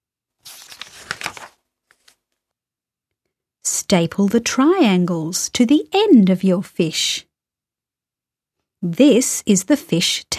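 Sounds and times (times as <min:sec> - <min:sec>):
scrap paper stuffed into paper bag: 0:00.4 - 0:02.2
speech: 0:03.9 - 0:07.3, 0:08.8 - 0:10.3.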